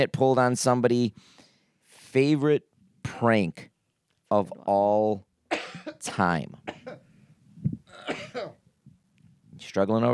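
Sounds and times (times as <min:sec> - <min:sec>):
speech: 0:00.0 - 0:01.4, 0:02.1 - 0:03.7, 0:04.3 - 0:05.3, 0:05.9 - 0:06.7, 0:09.6 - 0:10.1
man coughing with throaty rasp: 0:05.5 - 0:07.1, 0:07.9 - 0:08.6.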